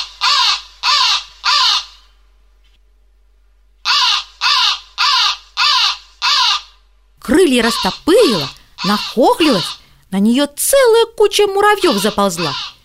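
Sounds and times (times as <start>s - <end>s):
crow cawing: 0.0s - 2.1s, 3.8s - 6.8s, 7.6s - 9.9s, 11.8s - 12.8s
speech: 7.2s - 12.7s.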